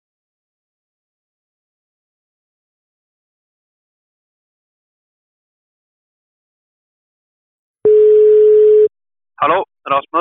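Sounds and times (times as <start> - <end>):
ringback tone of an outgoing phone call: 7.9 - 8.9
speech: 9.4 - 10.2.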